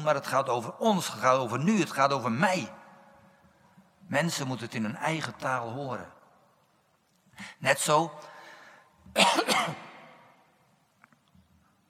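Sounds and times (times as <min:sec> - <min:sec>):
speech: 0:00.0 - 0:02.8, 0:04.1 - 0:06.2, 0:07.4 - 0:08.3, 0:09.1 - 0:09.9
throat clearing cough from a tickle in the throat: 0:09.2 - 0:09.9.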